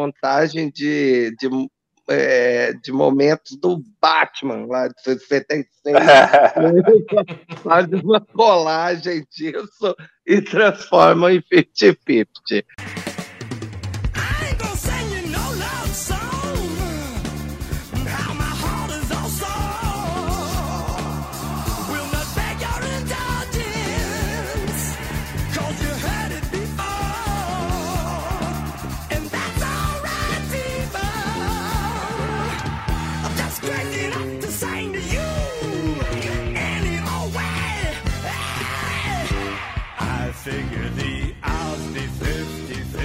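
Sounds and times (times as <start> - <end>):
speech: 0.0 - 13.1
laughter: 5.9 - 8.5
rock song with exaggerated shouted vocals, driving guitars and drums: 14.1 - 43.0.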